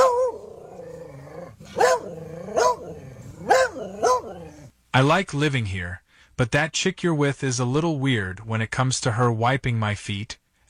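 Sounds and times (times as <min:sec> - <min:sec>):
pet dog growling and whining: 0:00.0 - 0:04.8
speech: 0:05.0 - 0:10.4.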